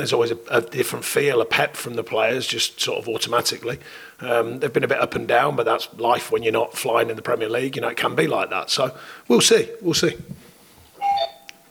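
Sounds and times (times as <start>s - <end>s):
speech: 0.0s - 10.4s
loud electronic doorbell chime: 11.0s - 11.6s.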